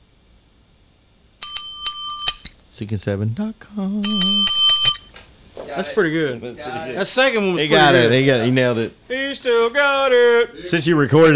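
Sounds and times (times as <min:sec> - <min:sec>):
bell dinging: 0:01.4 - 0:02.5, 0:04.0 - 0:05.1
speech: 0:02.8 - 0:04.6, 0:05.8 - 0:11.3.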